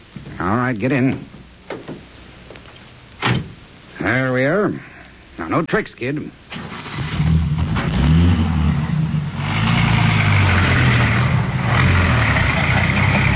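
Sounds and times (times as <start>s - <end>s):
speech: 0.5s - 1.3s, 4.1s - 6.4s
police radio car engine accelerating away: 6.5s - 13.3s.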